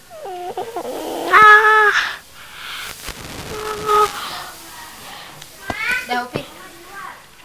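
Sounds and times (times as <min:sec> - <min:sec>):
child imitating cat and lion sounds: 0:00.0 - 0:02.2, 0:03.5 - 0:04.2.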